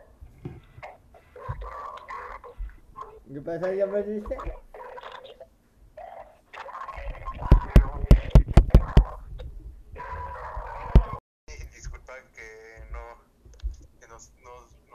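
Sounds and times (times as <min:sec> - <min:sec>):
choppy garbled voice fragments from a bad connection: 0:01.2 - 0:11.7
speech: 0:03.3 - 0:04.7.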